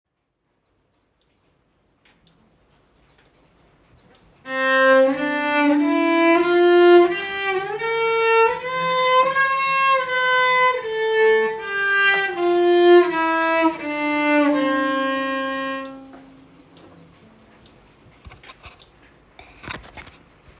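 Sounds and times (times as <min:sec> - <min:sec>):
cello playing a scale with raised shoulders: 0:04.4 - 0:16.6.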